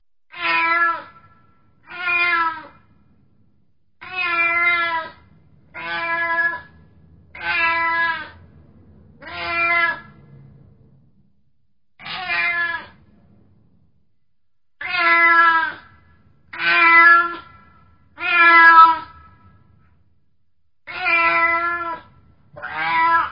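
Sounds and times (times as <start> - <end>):
frightened cat screaming at the entrance or in a tree: 0.3 - 2.9, 4.0 - 8.4, 9.2 - 10.2, 12.0 - 13.0, 14.8 - 19.6, 20.8 - 23.2.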